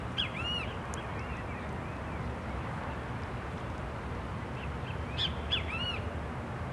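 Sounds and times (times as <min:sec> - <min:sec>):
steady low rumble of background noise: 0:00.0 - 0:06.7
great kiskadee calls beside a lake in a city park in Brasília: 0:00.2 - 0:01.6, 0:04.8 - 0:06.0.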